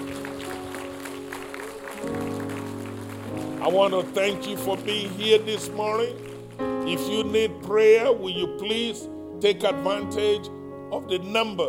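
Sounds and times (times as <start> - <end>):
congregation clapping: 0.0 - 7.7
sustained organ or keyboard chords: 0.0 - 11.6
speech: 3.6 - 11.6.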